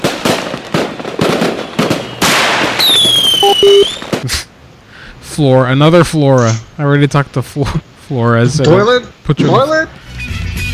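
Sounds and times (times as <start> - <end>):
fireworks bangs and crackling bursts: 0.0 - 4.4
high whistling tone of fireworks: 1.5 - 4.1
speech: 5.4 - 10.0.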